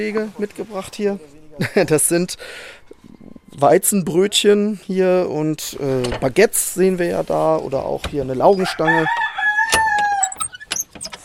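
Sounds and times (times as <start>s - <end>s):
speech: 0.0s - 9.8s
laughter: 1.5s - 2.3s
chickens clucking and squawking in an aviary: 8.4s - 10.6s
rooster crowing in an aviary: 8.5s - 10.5s.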